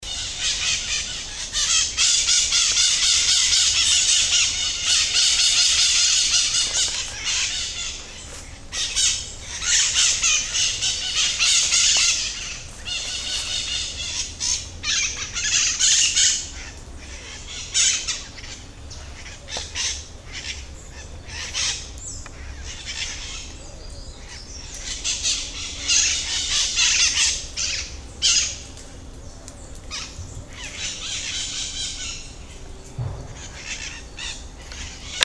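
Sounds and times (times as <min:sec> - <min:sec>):
white-eyed parakeets calling: 0:00.0 - 0:28.7, 0:29.9 - 0:35.2.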